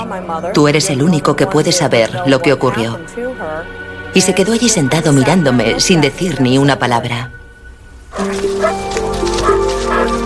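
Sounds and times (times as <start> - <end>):
speech: 0.0 - 7.4, 8.1 - 10.2
several dogs barking loudly: 8.1 - 10.2.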